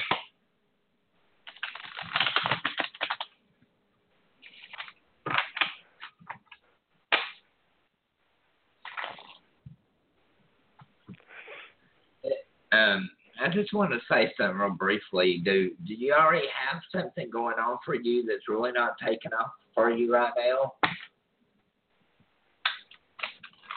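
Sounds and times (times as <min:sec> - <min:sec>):
playing cards being shuffled: 0:01.4 - 0:03.4, 0:04.4 - 0:07.4, 0:08.8 - 0:09.4, 0:22.7 - 0:23.7
speech: 0:12.8 - 0:20.8.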